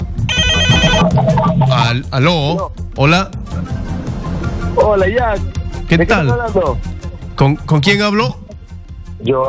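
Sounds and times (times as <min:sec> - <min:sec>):
electronic telephone ringing for an incoming call: 0:00.3 - 0:01.1
speech: 0:01.3 - 0:03.7, 0:04.7 - 0:08.4, 0:09.2 - 0:09.4.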